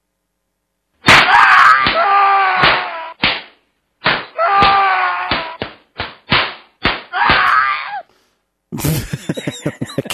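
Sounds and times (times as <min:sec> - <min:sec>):
sharp slapping hits from a slapping sound effect: 0:01.0 - 0:07.6
wailing groaning cries: 0:01.2 - 0:03.2, 0:04.4 - 0:05.6, 0:07.1 - 0:08.1
laughter: 0:08.8 - 0:10.1.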